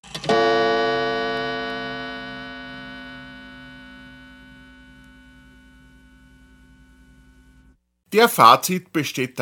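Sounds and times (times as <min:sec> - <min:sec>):
gong strike: 0:00.4 - 0:06.4
speech: 0:08.1 - 0:09.3.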